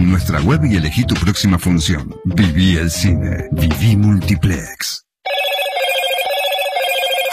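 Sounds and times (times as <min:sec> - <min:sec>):
speech: 0:00.1 - 0:05.1
Moto G86 5G mobile phone ringing with a warbling trill: 0:05.2 - 0:07.3.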